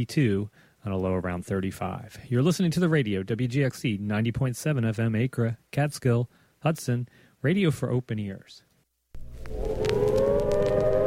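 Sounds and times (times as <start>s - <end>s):
speech: 0.0s - 8.7s
civil defense warning siren for imminent nuclear attack wailing: 9.2s - 11.0s.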